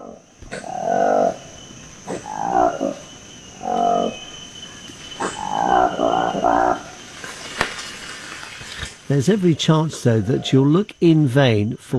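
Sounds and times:
Lokweli monkey roaring call in Lomami National Park forest canopy: 0.0 - 7.1, 9.9 - 10.6
high insect-like drone of forest ambience in Lomami National Park: 0.0 - 11.9
speech: 9.1 - 11.9.

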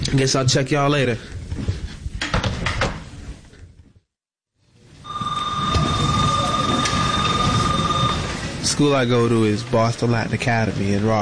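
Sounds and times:
speech: 0.1 - 1.7, 8.8 - 11.2
school bell ringing with a steady sustained electronic tone: 5.1 - 8.5
hallway bustle: 5.1 - 8.7
loud crowd noise: 5.1 - 8.8.

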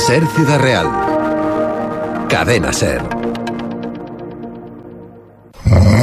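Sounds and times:
speech: 0.1 - 1.1, 2.3 - 3.4
person snoring: 5.5 - 6.0.

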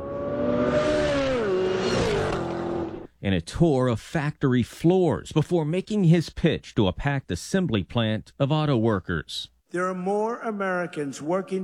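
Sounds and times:
General Motors cars in a high-speed racing demonstration at a proving ground in Milford, Michigan: 0.0 - 3.1
speech: 3.2 - 11.6.

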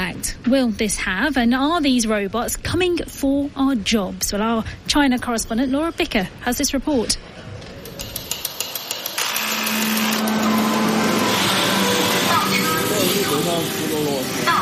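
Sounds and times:
speech: 0.2 - 7.4
factory machinery whirring and humming: 7.2 - 14.6
factory machinery mechanical clacks: 7.6 - 14.5.

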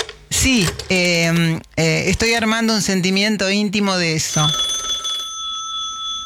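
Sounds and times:
speech: 0.4 - 4.7
old mechanical telephone bell ringing with a rapid metallic trill: 4.0 - 6.2.

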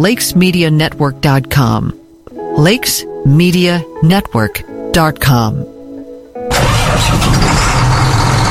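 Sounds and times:
speech: 0.0 - 2.0, 2.6 - 5.7, 6.9 - 7.6
big truck and tractor engines revving hard in the dirt at a truck and tractor pull: 6.5 - 8.4
brief mechanical whine: 6.5 - 8.4.

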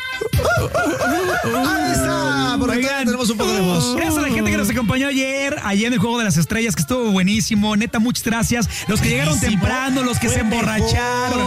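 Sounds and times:
chicken cackling: 0.4 - 2.7
rooster crowing: 0.4 - 2.7
speech: 0.6 - 11.4.

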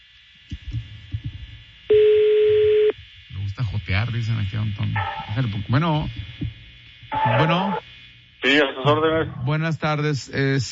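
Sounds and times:
telephone ringing tone on outgoing call: 1.9 - 2.9
speech: 3.9 - 6.6, 7.2 - 10.6.

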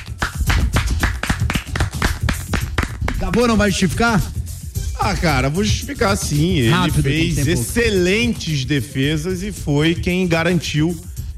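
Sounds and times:
applause for a football goalkeeper: 0.0 - 3.5
speech: 3.4 - 4.4, 5.0 - 11.1.

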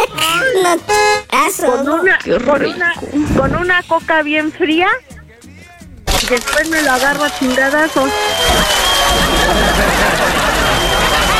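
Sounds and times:
speech: 0.7 - 1.0, 1.6 - 5.1, 6.2 - 10.6
audience applause: 7.2 - 11.3
murmur of crowd voices: 7.3 - 11.3
laughter: 9.2 - 11.3.

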